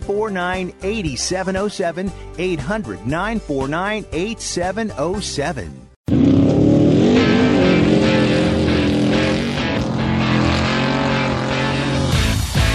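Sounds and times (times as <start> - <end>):
speech: 0.1 - 5.9
racing car engine roaring in motorsports action: 6.1 - 12.7.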